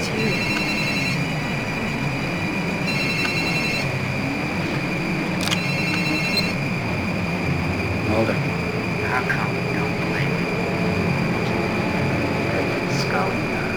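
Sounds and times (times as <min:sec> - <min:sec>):
dense rumbling noise: 0:00.0 - 0:13.7
telephone ringing with a high electronic trill: 0:00.2 - 0:01.5, 0:02.9 - 0:04.0, 0:05.5 - 0:06.6.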